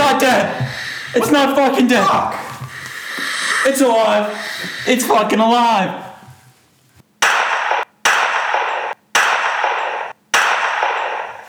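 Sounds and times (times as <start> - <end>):
speech: 0.4 - 2.5, 3.6 - 6.1
gunshots in an office: 7.2 - 11.4.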